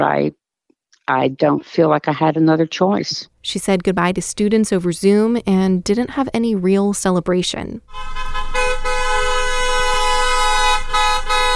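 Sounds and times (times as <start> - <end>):
speech: 0.0 - 0.4, 1.1 - 8.6
car horns honking during a car parade for a teacher's retirement: 7.9 - 11.5.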